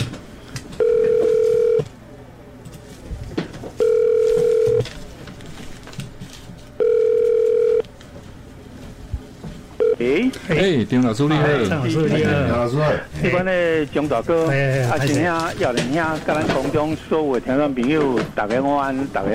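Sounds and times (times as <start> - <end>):
telephone ringback tone over a phone line: 0.8 - 1.9, 3.8 - 4.9, 6.8 - 7.8, 9.8 - 10.2
speech: 10.6 - 19.3.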